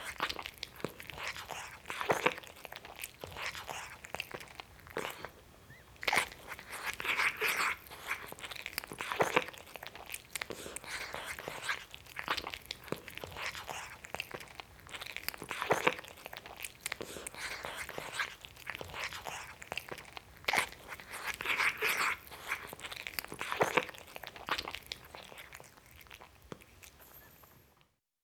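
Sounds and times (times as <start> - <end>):
cat eating greedily, chewing and crunching: 0.0 - 27.9.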